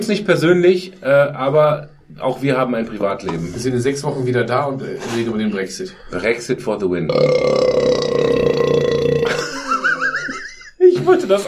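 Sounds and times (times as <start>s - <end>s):
speech: 0.0s - 8.0s, 11.0s - 11.4s
loud drawn-out burp: 7.1s - 10.3s
laughter: 9.2s - 11.4s.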